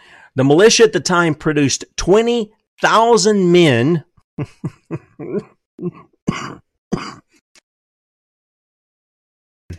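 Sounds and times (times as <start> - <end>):
speech: 0.4 - 7.2
person with chest congestion coughing: 4.4 - 7.4.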